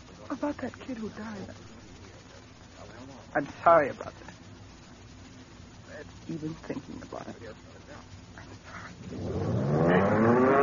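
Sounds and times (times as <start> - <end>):
speech: 0.3 - 1.8, 3.3 - 4.3, 6.0 - 7.7, 9.0 - 9.6
engine starting up and revving: 9.1 - 10.6.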